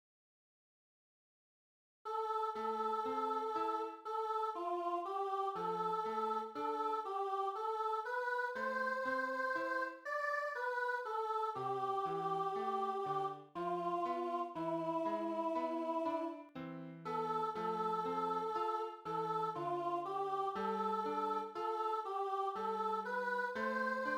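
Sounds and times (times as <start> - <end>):
tenor singing: 2.1 - 16.5, 17.1 - 24.1.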